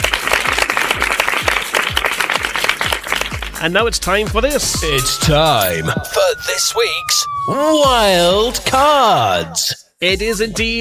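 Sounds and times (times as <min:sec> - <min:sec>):
loud sustained applause from many hands: 0:00.0 - 0:03.6
steady low thumping beat: 0:02.9 - 0:08.8
speech: 0:03.6 - 0:10.7.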